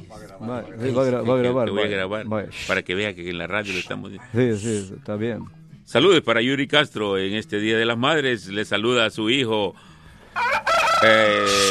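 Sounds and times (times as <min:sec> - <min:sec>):
speech: 0:00.1 - 0:11.6
rooster crowing: 0:10.4 - 0:11.6.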